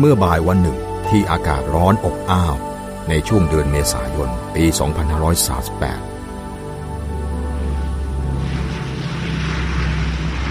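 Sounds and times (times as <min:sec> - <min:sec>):
speech: 0:00.0 - 0:06.1
large airplane taking off: 0:04.0 - 0:10.4.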